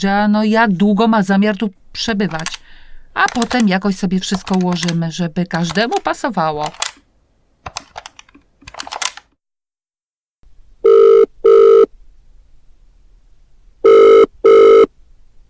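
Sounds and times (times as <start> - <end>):
speech: 0.0 - 2.6, 3.2 - 7.0
telephone ringing in double rings: 2.2 - 2.6, 3.2 - 7.0, 10.8 - 11.9, 13.8 - 14.9
clicking keys: 2.2 - 7.0, 7.6 - 9.3.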